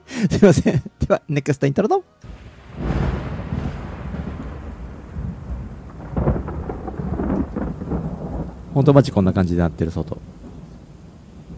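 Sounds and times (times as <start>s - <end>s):
speech: 0.2s - 2.3s, 8.8s - 10.4s
steady rain: 2.2s - 11.5s
deep rolling thunder during a storm: 2.3s - 11.5s.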